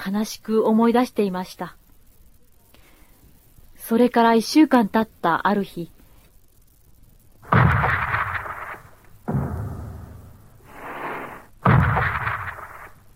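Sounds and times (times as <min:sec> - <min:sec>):
speech: 0:00.0 - 0:01.8, 0:03.9 - 0:06.0
naval gunfire bombarding the coast ahead of a US landing: 0:07.4 - 0:13.1.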